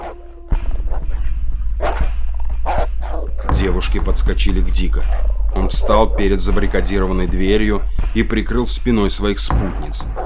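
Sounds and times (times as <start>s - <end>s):
loud constant low rumble: 0.5s - 10.2s
dog barking in a stairwell: 1.8s - 3.3s
speech: 3.6s - 10.2s.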